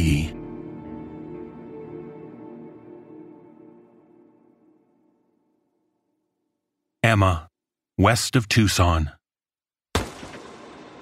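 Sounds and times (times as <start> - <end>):
speech: 7.1 - 9.2
gunshot with long tail: 10.0 - 10.9.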